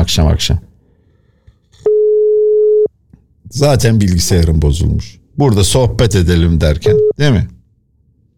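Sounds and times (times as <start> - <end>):
speech: 0.1 - 0.7, 3.5 - 7.6
telephone ringback tone of an unanswered call: 1.9 - 2.9.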